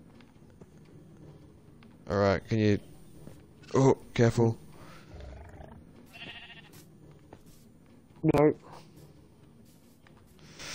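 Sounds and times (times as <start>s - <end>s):
video game noise: 0.0s - 10.7s
speech: 2.1s - 2.9s, 3.7s - 4.6s, 8.2s - 8.6s
sheep bleating in a video game: 5.1s - 6.8s.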